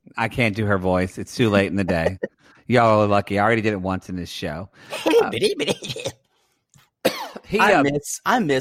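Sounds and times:
speech: 0:00.2 - 0:06.2, 0:07.5 - 0:08.5
raspy coughing: 0:04.9 - 0:06.3, 0:07.0 - 0:07.5.

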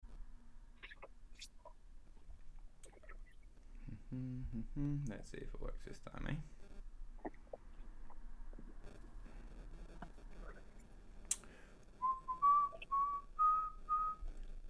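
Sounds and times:
speech: 0:04.1 - 0:06.6
person whistling a short rising run of clear notes: 0:12.0 - 0:14.2.

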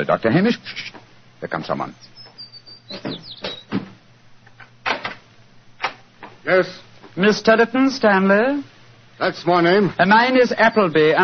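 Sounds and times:
speech: 0:00.0 - 0:02.2, 0:02.9 - 0:03.4, 0:06.4 - 0:11.2
door hinges creaking: 0:02.9 - 0:04.0.

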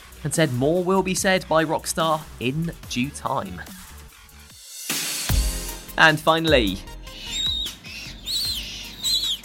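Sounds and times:
speech: 0:00.2 - 0:03.9, 0:06.0 - 0:06.9
Humboldt penguin chicks calling in shrill squeaky peeps: 0:06.2 - 0:09.4.

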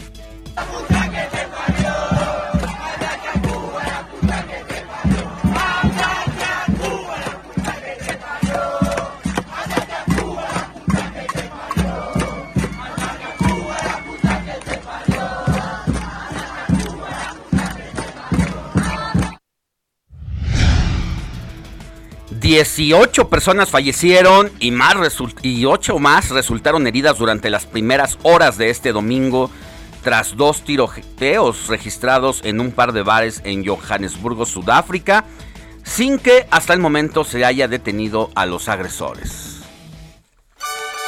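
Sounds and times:
large crowd of protesters chanting at a street march: 0:00.6 - 0:19.4
speech: 0:22.5 - 0:39.5.

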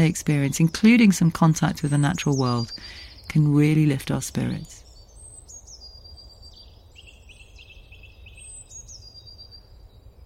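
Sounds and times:
speech: 0:00.0 - 0:04.8
steady low rumble of outdoor noise: 0:00.0 - 0:04.8
bird singing whistled phrases: 0:00.0 - 0:10.2.

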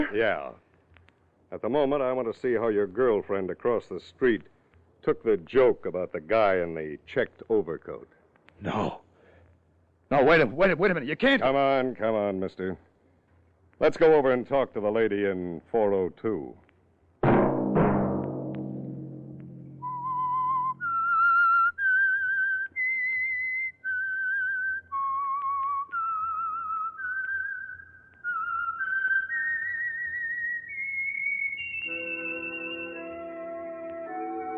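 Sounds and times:
speech: 0:00.0 - 0:00.7, 0:01.5 - 0:09.0, 0:10.1 - 0:12.9, 0:13.8 - 0:16.6
sustained instrumental chords: 0:17.2 - 0:21.1
loud resonant strikes: 0:17.2 - 0:21.4
whistled theme melody: 0:19.7 - 0:34.5.

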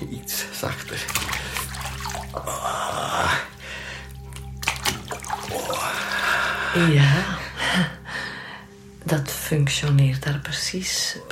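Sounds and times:
bathwater sloshing as a rough washcloth is rubbed through it: 0:00.0 - 0:07.6
bathwater splashing: 0:00.6 - 0:02.6, 0:03.2 - 0:06.6
speech: 0:06.8 - 0:07.9, 0:09.5 - 0:11.2.

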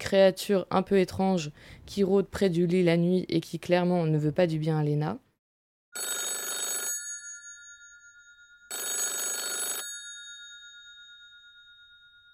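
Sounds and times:
speech: 0:00.1 - 0:05.2
old-style telephone bell ringing: 0:06.0 - 0:12.3.

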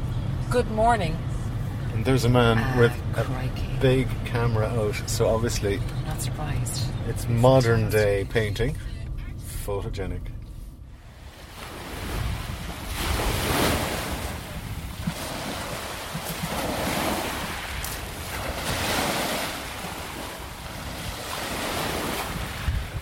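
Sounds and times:
speech: 0:00.5 - 0:01.3, 0:02.0 - 0:08.9, 0:09.7 - 0:10.4
sea waves breaking at a pier: 0:10.9 - 0:22.9
gusty wind buffeting the microphone: 0:11.1 - 0:22.9.

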